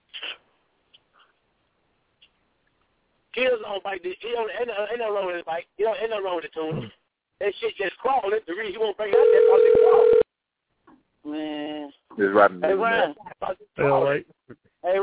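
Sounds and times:
speech: 3.4 - 10.2, 11.2 - 15.0
tinny voice over a phone line: 9.1 - 10.2.

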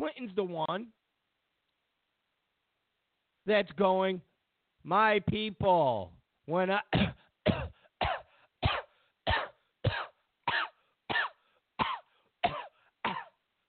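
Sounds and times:
speech: 0.2 - 1.0, 3.4 - 7.6
coughing fit with harsh broadband coughs: 6.9 - 13.4.

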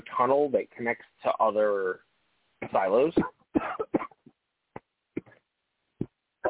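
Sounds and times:
speech: 0.2 - 3.8
person coughing: 3.2 - 4.2.

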